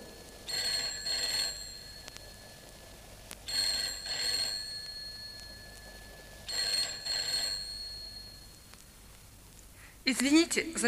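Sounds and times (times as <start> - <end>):
telephone bell ringing: 0.0 - 8.6
speech: 10.1 - 10.8.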